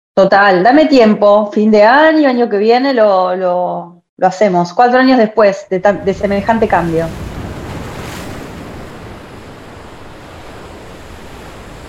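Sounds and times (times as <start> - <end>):
speech: 0.2 - 7.3
ocean waves breaking on a shore: 5.8 - 11.8
wind rumble: 5.8 - 11.8.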